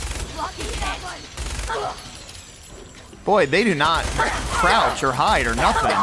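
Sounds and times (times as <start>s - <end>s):
video game gunfire as a player shoots enemies: 0.0s - 2.2s, 3.6s - 6.0s
speech: 0.5s - 2.1s, 2.8s - 6.0s.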